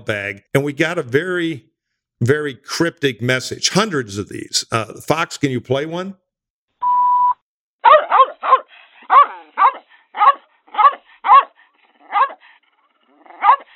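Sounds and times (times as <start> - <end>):
speech: 0.0 - 6.2
electronic beep: 6.8 - 7.4
dog barking: 7.8 - 12.4, 13.3 - 13.7.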